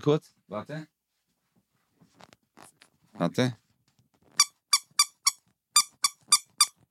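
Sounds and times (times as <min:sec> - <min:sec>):
speech: 0:00.0 - 0:00.9, 0:03.2 - 0:03.6
rubber duck squeaking: 0:04.4 - 0:06.8.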